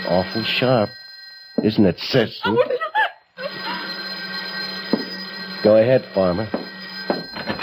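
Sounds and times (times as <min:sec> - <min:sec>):
old-style telephone bell ringing: 0:00.0 - 0:02.1, 0:03.4 - 0:07.6
speech: 0:00.1 - 0:01.0, 0:01.6 - 0:02.8, 0:05.6 - 0:06.6.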